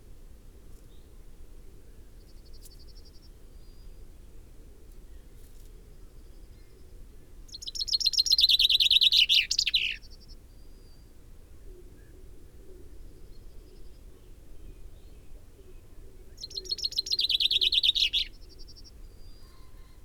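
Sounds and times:
common chaffinch Fringilla coelebs singing: 0:07.5 - 0:10.2, 0:16.4 - 0:20.0.

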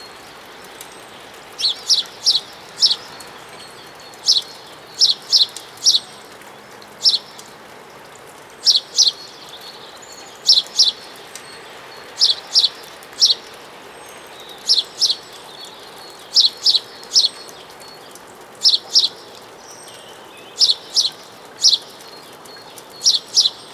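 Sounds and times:
house sparrow chirping: 0:01.6 - 0:06.2, 0:07.0 - 0:07.4, 0:08.6 - 0:09.7, 0:10.3 - 0:13.6, 0:14.3 - 0:15.7, 0:16.3 - 0:17.6, 0:18.6 - 0:19.2, 0:19.8 - 0:23.7.

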